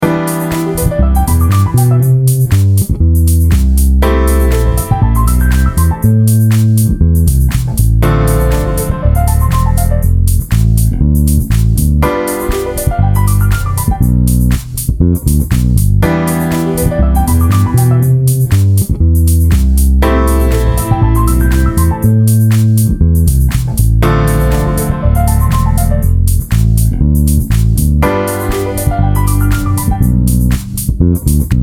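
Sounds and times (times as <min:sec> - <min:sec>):
keyboard playing: 0:00.0 - 0:02.5, 0:04.0 - 0:07.0, 0:08.0 - 0:10.2, 0:12.0 - 0:14.4, 0:16.0 - 0:18.5, 0:20.0 - 0:23.0, 0:24.0 - 0:26.3, 0:28.0 - 0:30.4
bass playing in C major: 0:00.0 - 0:31.6.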